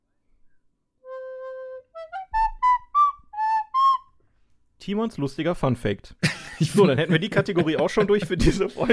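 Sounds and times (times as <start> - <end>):
whistled jingle melody: 1.0 - 4.2
speech: 4.8 - 8.9
laughter: 6.2 - 8.9.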